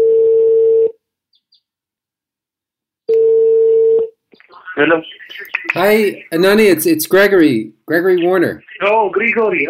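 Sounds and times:
Skype call dialing and ringing tone: 3.1s - 4.1s
speech: 4.8s - 9.6s.

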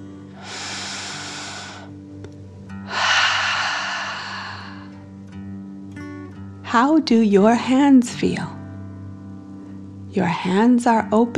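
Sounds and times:
slow deep breathing in and out: 0.3s - 2.0s, 2.9s - 5.2s
speech: 6.7s - 8.6s, 10.2s - 11.3s.

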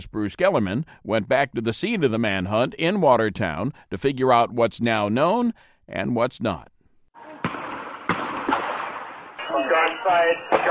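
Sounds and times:
speech: 0.0s - 6.8s, 9.5s - 10.6s
gunfire during a night-time shootout between police and suspects: 7.4s - 9.5s
voices: 9.4s - 10.6s.

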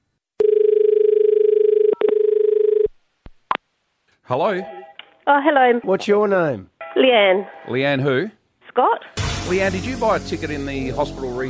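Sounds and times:
buzzy telephone line tone as a call is placed: 0.4s - 2.9s
speech: 4.3s - 11.4s.

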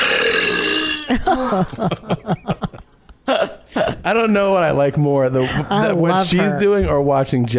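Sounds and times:
woman belching loudly: 0.0s - 1.2s
speech: 1.1s - 2.6s, 3.8s - 7.5s
chuckling laughter: 1.1s - 4.0s.

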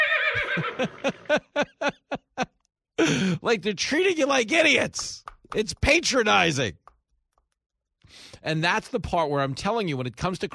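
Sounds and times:
horse neighing in a commercial: 0.0s - 1.3s
laughter: 0.3s - 3.4s
speech: 0.4s - 1.7s, 3.1s - 6.8s, 8.4s - 10.5s.

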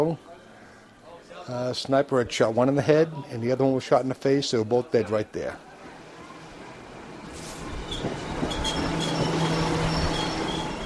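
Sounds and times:
speech: 0.0s - 0.3s, 1.5s - 5.7s
commuter train rumbling pulling into a station: 7.1s - 10.8s
commuter train wheel squeal as it slows: 7.8s - 10.8s.

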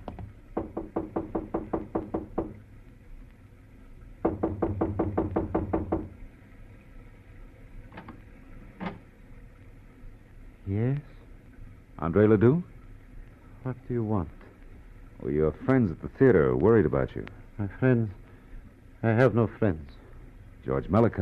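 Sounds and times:
knocking on an apartment door in an apartment hotel: 0.0s - 2.6s, 4.2s - 6.2s
speech: 12.0s - 12.7s, 13.9s - 14.4s, 15.2s - 18.2s, 19.0s - 20.0s, 20.6s - 21.2s.

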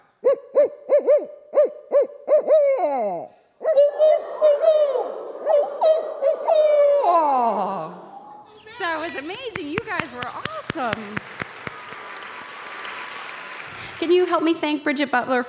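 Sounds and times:
single person imitating owl hoots: 0.2s - 8.5s
group of people imitating owl hoots in chorus: 0.2s - 9.6s
speech: 14.0s - 15.4s.

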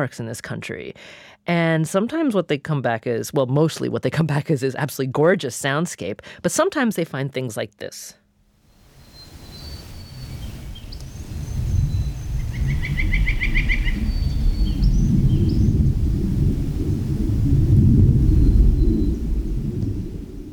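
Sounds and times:
speech: 0.0s - 8.2s
birds chirping and trilling at Lawn Lake in Rocky Mountain National Park: 9.0s - 15.8s
continuous low rumble of aircraft in the sky above Lawn Lake: 10.9s - 20.5s.

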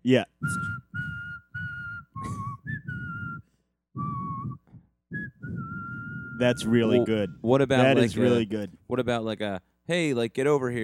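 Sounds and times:
speech: 0.0s - 0.6s, 6.4s - 10.8s
person whistling a slow tune: 0.4s - 7.1s.

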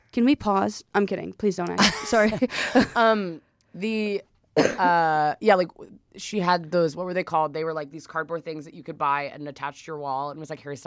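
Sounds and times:
speech: 0.2s - 10.8s
person burping after drinking Diet Coke: 4.6s - 5.0s.

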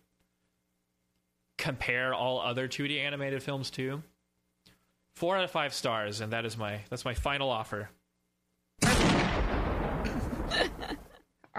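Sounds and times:
speech: 1.6s - 4.1s, 5.2s - 8.0s
dense rumbling roar of gunfire: 8.8s - 10.5s
gunshot sound effect: 8.8s - 10.7s
laughter: 10.1s - 11.2s.

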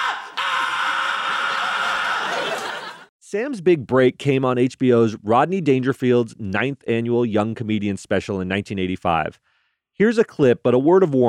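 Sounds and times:
person giving a raw primal scream: 0.0s - 2.5s
laughter: 1.2s - 3.1s
speech: 3.3s - 11.2s.

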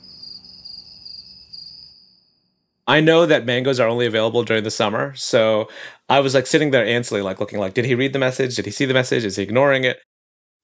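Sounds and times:
crickets chirping: 0.0s - 2.8s
speech: 2.9s - 10.6s.

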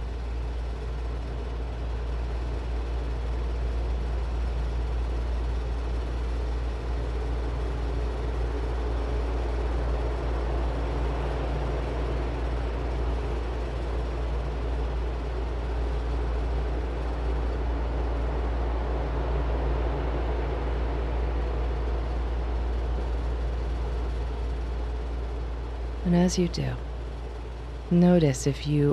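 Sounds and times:
steady white noise: 0.0s - 28.9s
speech: 26.2s - 26.9s, 27.9s - 28.9s.

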